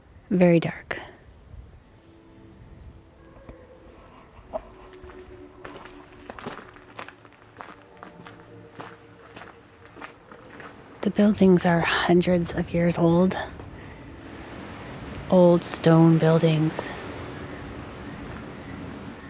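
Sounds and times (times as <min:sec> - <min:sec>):
low hum: 0:00.0 - 0:19.2
speech: 0:00.3 - 0:01.1, 0:11.2 - 0:13.6, 0:15.3 - 0:17.0
footsteps walking outdoors at night among old stone buildings: 0:03.2 - 0:15.2, 0:17.9 - 0:19.2.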